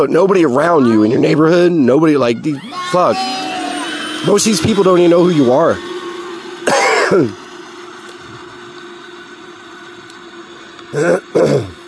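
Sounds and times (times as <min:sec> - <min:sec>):
speech: 0:00.0 - 0:03.5, 0:04.2 - 0:05.9, 0:07.1 - 0:07.4, 0:11.0 - 0:11.2
low droning hum: 0:00.0 - 0:11.8
person clearing throat: 0:06.7 - 0:07.4, 0:11.0 - 0:11.8.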